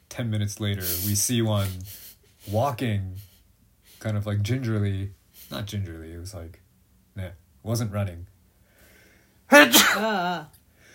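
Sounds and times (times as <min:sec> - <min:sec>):
speech: 0:00.2 - 0:03.3, 0:04.0 - 0:06.6, 0:07.2 - 0:08.3, 0:09.5 - 0:10.6
person sneezing: 0:09.5 - 0:10.5.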